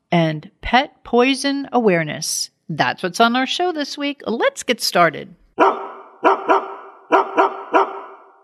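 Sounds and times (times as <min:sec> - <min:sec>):
speech: 0:00.4 - 0:05.8
dog barking: 0:05.6 - 0:08.4.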